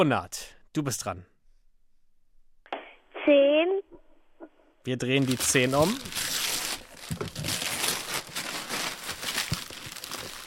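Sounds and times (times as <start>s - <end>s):
speech: 0.0s - 1.3s, 3.2s - 3.8s, 4.8s - 6.3s
gift wrapping paper being torn open: 5.2s - 10.4s.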